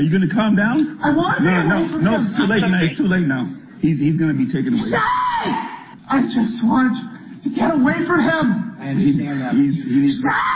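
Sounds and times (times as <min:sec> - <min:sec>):
speech: 0:00.0 - 0:10.5
man screaming and wailing: 0:04.9 - 0:05.9, 0:10.2 - 0:10.5.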